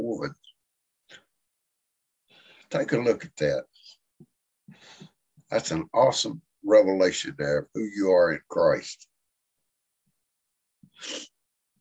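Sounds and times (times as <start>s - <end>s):
speech: 0.1s - 0.5s, 2.7s - 3.9s, 4.7s - 9.1s, 11.0s - 11.3s
person sneezing: 11.0s - 11.2s.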